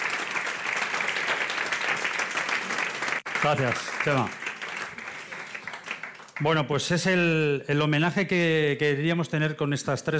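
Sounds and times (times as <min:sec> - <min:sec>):
audience applause at a tribute honouring a family's gastronomic legacy: 0:00.0 - 0:06.8
speech: 0:03.4 - 0:04.4, 0:06.4 - 0:10.1.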